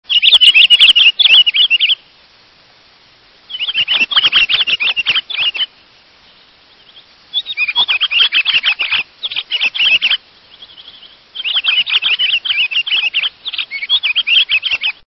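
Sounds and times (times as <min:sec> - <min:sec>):
Pine Grosbeak calling: 0:00.0 - 0:02.2, 0:03.4 - 0:15.0.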